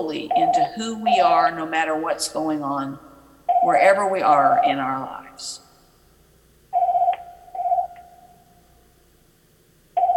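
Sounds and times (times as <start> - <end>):
telephone ringing in electronic bursts: 0.0 - 1.5, 3.5 - 4.7, 6.7 - 8.4, 10.0 - 10.1
speech: 0.0 - 5.6.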